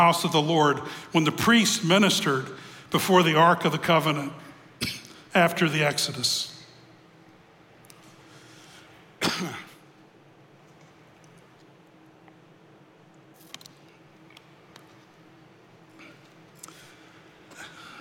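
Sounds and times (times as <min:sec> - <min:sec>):
speech: 0:00.0 - 0:06.5, 0:09.3 - 0:09.7
sharp cough: 0:04.8 - 0:05.2, 0:09.2 - 0:09.8
soft throat-clearing noise: 0:04.8 - 0:05.2, 0:09.2 - 0:09.8.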